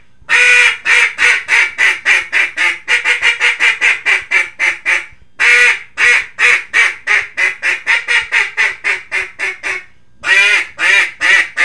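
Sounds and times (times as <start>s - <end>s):
mallard quacking with harsh nasal calls: 0.3s - 11.6s.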